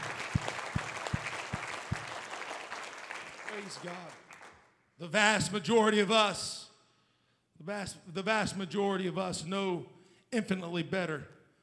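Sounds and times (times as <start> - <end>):
congregation clapping in unison: 0.0 - 4.8
speech: 3.6 - 4.2, 5.0 - 6.6, 7.6 - 11.4.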